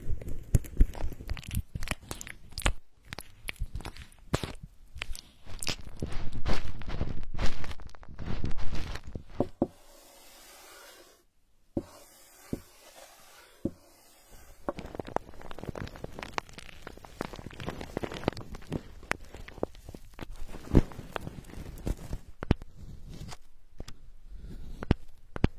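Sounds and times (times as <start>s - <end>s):
crisp clicks during ear cleaning: 0.0s - 9.2s, 14.7s - 22.7s
ear cleaning scratchy rustling: 0.0s - 23.5s.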